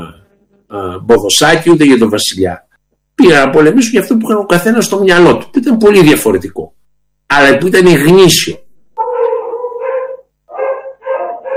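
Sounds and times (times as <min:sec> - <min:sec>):
speech: 0:00.0 - 0:08.6
dogs barking, yelping and whining: 0:09.0 - 0:11.5.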